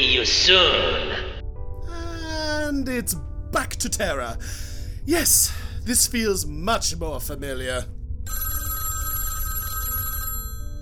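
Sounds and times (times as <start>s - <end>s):
low rumbling background: 0.0s - 8.4s
speech: 0.2s - 1.2s, 2.7s - 8.4s
telephone ringing with a bright metallic bell tone: 8.3s - 10.8s.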